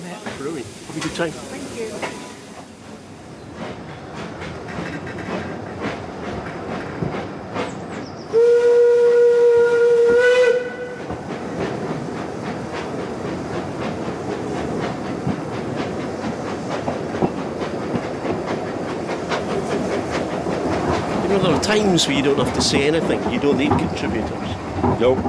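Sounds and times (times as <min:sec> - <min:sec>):
steam train engine chugging and clattering along the rails: 0:00.0 - 0:25.2
speech: 0:00.4 - 0:02.4, 0:21.7 - 0:25.2
steam train whistle blowing: 0:08.3 - 0:11.1.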